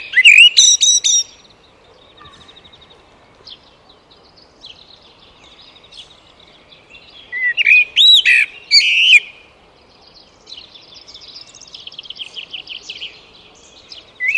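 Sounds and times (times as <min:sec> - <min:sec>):
Eurasian blackbird Turdus merula giving a mellow whistle and sharp high notes: 0:00.0 - 0:01.5, 0:07.3 - 0:09.4, 0:14.2 - 0:14.3
faint bird chirps: 0:00.0 - 0:14.3.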